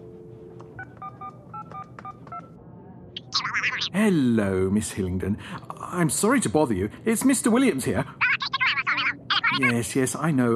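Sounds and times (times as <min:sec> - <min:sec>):
low hum: 0:00.0 - 0:10.5
touch-tone beeps of a telephone number being dialed: 0:00.8 - 0:02.5
speech: 0:03.6 - 0:08.2, 0:09.6 - 0:10.5.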